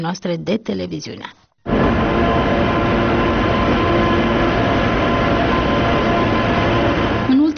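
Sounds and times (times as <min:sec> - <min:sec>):
speech: 0:00.0 - 0:01.4
brief tonal squeal: 0:01.7 - 0:07.5
passenger train rumbling along rails: 0:01.7 - 0:07.5.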